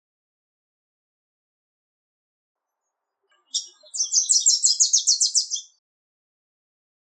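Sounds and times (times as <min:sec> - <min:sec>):
Wilson's warbler song: 0:03.3 - 0:05.8.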